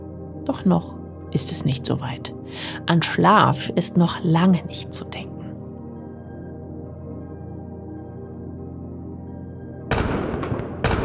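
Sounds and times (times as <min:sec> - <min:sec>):
speech: 0:00.5 - 0:05.3
fireworks salute shells booming: 0:09.9 - 0:11.0.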